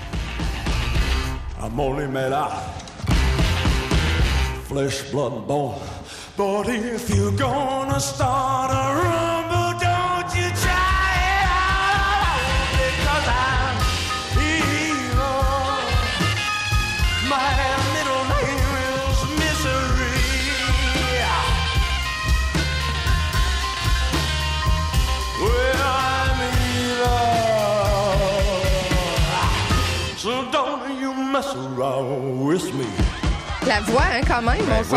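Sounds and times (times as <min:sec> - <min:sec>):
loud driving rock and roll song with heavy bass, drums and guitars: 0:00.0 - 0:34.9
gritty male voice belting and shouting: 0:01.4 - 0:02.9, 0:04.6 - 0:16.4, 0:17.0 - 0:22.0, 0:25.2 - 0:33.2
speech: 0:01.6 - 0:02.8, 0:04.7 - 0:09.4, 0:33.7 - 0:34.9.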